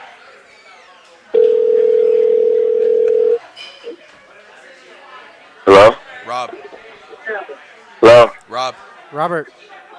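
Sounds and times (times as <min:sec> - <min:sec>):
faint murmur: 0:00.0 - 0:09.9
ringback tone on an outgoing phone call: 0:01.4 - 0:03.4
speech: 0:09.1 - 0:09.8.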